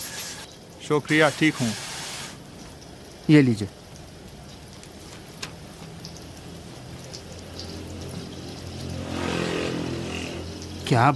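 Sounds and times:
steady rain falling: 0:00.0 - 0:11.1
speech: 0:00.9 - 0:01.8, 0:03.3 - 0:03.8, 0:10.9 - 0:11.1
rain drips and taps: 0:02.4 - 0:09.0, 0:10.4 - 0:11.1.

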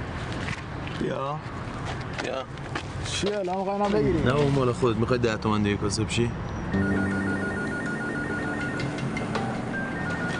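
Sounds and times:
speech: 0:01.0 - 0:07.2
telephone ringing with repeating electronic tone: 0:06.8 - 0:10.3.

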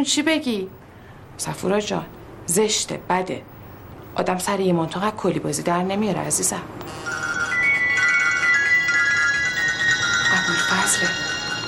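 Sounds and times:
speech: 0:00.0 - 0:00.8, 0:01.4 - 0:03.5, 0:04.2 - 0:07.3, 0:10.9 - 0:11.4
mobile phone electronic ringtone of sustained high tones: 0:06.8 - 0:11.6.

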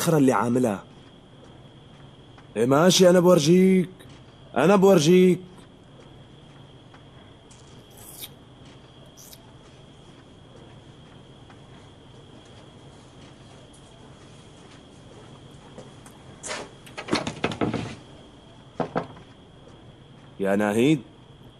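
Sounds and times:
speech: 0:00.0 - 0:00.9, 0:02.6 - 0:04.0, 0:04.6 - 0:05.5, 0:20.5 - 0:21.1
steady low hum: 0:00.0 - 0:21.5
door shutting: 0:16.4 - 0:18.0.

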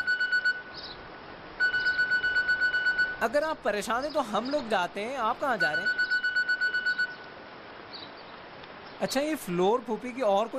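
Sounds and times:
telephone ringing with an electronic trilling tone: 0:00.0 - 0:00.7, 0:01.6 - 0:03.4, 0:05.6 - 0:07.2
speech: 0:03.2 - 0:06.0, 0:09.0 - 0:10.5.

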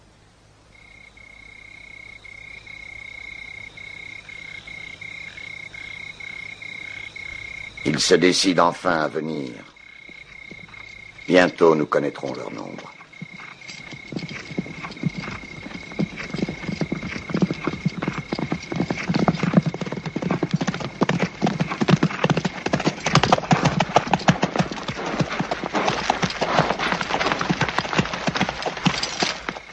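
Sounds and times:
speech: 0:07.8 - 0:09.8, 0:11.3 - 0:12.9
hooves of hundreds of horses of a large army clattering: 0:09.3 - 0:29.7.

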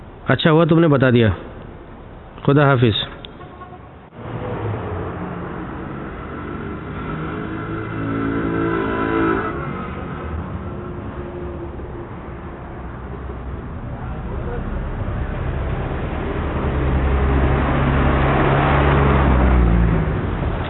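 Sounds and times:
speech: 0:00.3 - 0:01.5, 0:02.4 - 0:03.0
car engine driving and revving: 0:04.1 - 0:20.6.

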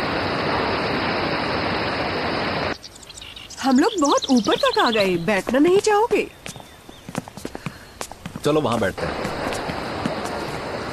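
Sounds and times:
waterfall rushing: 0:00.0 - 0:02.8, 0:09.0 - 0:10.9
speech: 0:03.6 - 0:06.4, 0:08.4 - 0:09.3.

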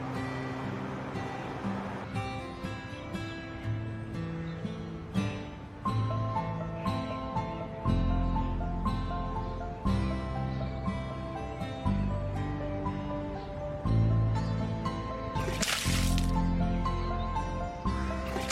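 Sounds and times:
music: 0:00.0 - 0:18.4
liquid splash: 0:15.4 - 0:16.4, 0:18.3 - 0:18.4
water sloshing and pouring: 0:15.4 - 0:16.4, 0:18.2 - 0:18.4.

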